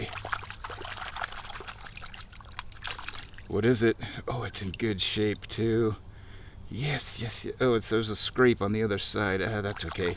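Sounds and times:
water trickling and splashing while a golf ball is washed off: 0:00.0 - 0:05.6, 0:09.5 - 0:10.1
speech: 0:03.5 - 0:06.1, 0:06.7 - 0:10.1.

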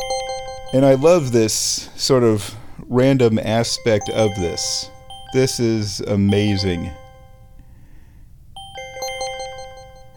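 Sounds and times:
bright chime-like synth notes bouncing: 0:00.0 - 0:02.3, 0:02.9 - 0:07.7, 0:08.6 - 0:10.1
speech: 0:00.7 - 0:07.0.

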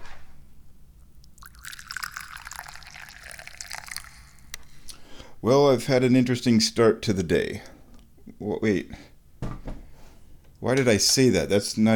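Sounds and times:
tea pouring into a cup: 0:01.2 - 0:04.5
speech: 0:05.4 - 0:07.7, 0:08.4 - 0:09.1, 0:10.6 - 0:11.9.

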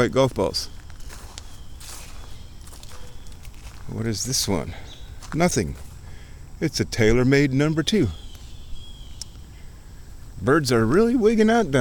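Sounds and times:
speech: 0:00.0 - 0:00.8, 0:03.9 - 0:05.9, 0:06.6 - 0:08.2, 0:10.4 - 0:11.8
footsteps through grass beside a stream: 0:00.4 - 0:06.1.

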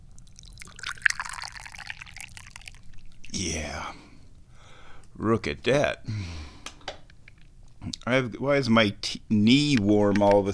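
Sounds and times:
low hum: 0:00.0 - 0:10.5
tea pouring into a cup: 0:00.2 - 0:03.5
speech: 0:05.2 - 0:06.4, 0:07.8 - 0:10.5.

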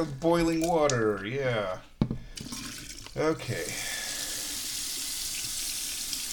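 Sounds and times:
speech: 0:00.0 - 0:01.9, 0:03.2 - 0:03.9
tap water running while a cup is rinsed: 0:02.0 - 0:06.3.

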